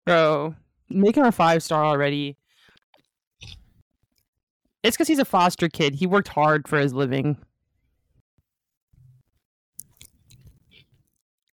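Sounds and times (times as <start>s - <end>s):
speech: 0.1s - 2.4s, 3.4s - 3.6s, 4.8s - 7.5s
wet squishy chewing: 2.8s - 3.7s, 9.8s - 11.5s.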